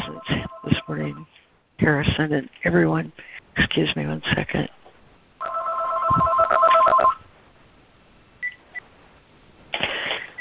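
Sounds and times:
telephone bell ringing: 0.0s - 0.9s, 5.4s - 7.2s
speech: 0.9s - 4.8s.

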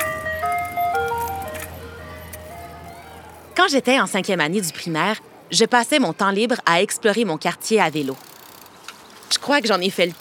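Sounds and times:
ice cream truck jingle: 0.0s - 4.3s
speech: 3.6s - 8.3s, 9.5s - 10.1s.

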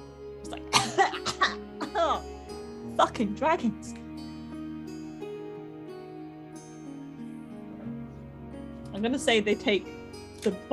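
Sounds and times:
person coughing harshly: 0.7s - 2.0s
speech: 3.0s - 4.0s, 9.0s - 10.7s.

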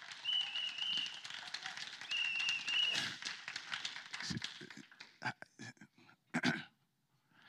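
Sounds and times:
crowd clapping in a dense rapid patter: 0.0s - 5.4s
shrill whistle long blasts: 0.2s - 1.2s, 2.1s - 3.1s.

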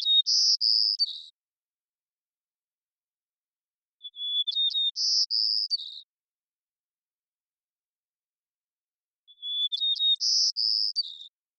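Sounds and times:
White-crowned Sparrow Zonotrichia leucophrys song in Washington, United States: 0.0s - 1.7s, 3.7s - 6.3s, 7.4s - 11.5s.

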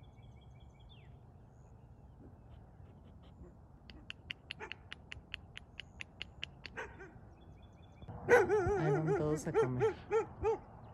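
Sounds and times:
neighbor's dog barking: 6.7s - 7.2s, 8.2s - 10.7s
speech: 9.4s - 10.6s.

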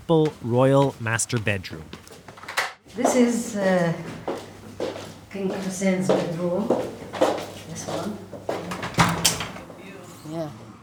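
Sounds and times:
speech: 0.1s - 2.0s, 3.0s - 4.2s, 5.3s - 7.0s, 7.8s - 8.5s, 10.3s - 10.6s
balcony door latch clunk: 8.7s - 9.7s.

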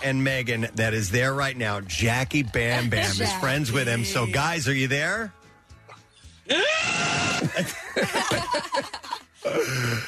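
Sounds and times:
speech: 0.0s - 5.4s, 6.5s - 10.0s
loud overdriven yelling and shrieking from several voices: 6.5s - 7.5s
laughter-like wails: 6.5s - 9.7s.

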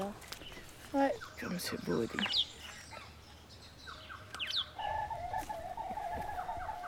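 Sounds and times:
moorhen calling by a lake: 0.4s - 6.8s
speech: 0.9s - 2.5s.

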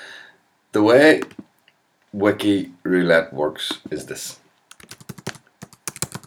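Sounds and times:
speech: 0.7s - 1.5s, 2.1s - 4.4s
computer keyboard typing: 1.2s - 1.5s, 4.7s - 6.2s.

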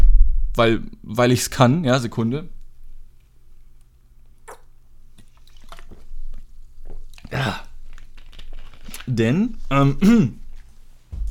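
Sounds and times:
low steady hum: 0.0s - 11.3s
speech: 0.6s - 2.6s, 9.1s - 10.4s
person drinking water with wet gulps: 4.4s - 9.1s.

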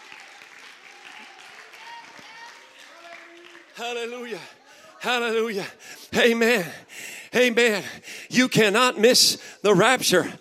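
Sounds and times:
audience clapping and cheering in praise of the Lord: 0.0s - 4.6s
speech: 3.8s - 10.3s.

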